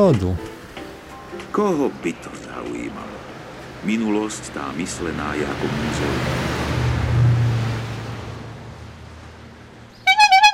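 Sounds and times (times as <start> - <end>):
speech: 0.0 - 0.5, 1.6 - 3.2, 3.8 - 6.6
steady rushing noise: 0.0 - 10.1
horn of an old red bicycle honking: 10.0 - 10.5.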